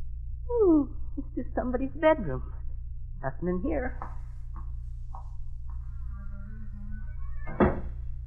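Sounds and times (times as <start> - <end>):
steady low hum: 0.0 - 8.2
speech: 1.6 - 2.6, 3.2 - 4.2
squeaky door creaking open: 6.1 - 8.0.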